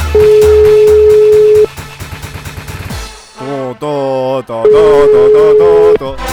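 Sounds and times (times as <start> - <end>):
tinny synthesized telephone hold music: 0.0 - 2.4, 4.7 - 6.3.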